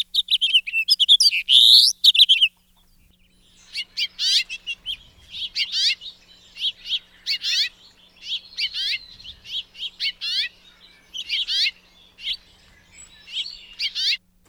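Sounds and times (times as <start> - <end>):
house finch singing a rambling warble: 0.0 - 14.4.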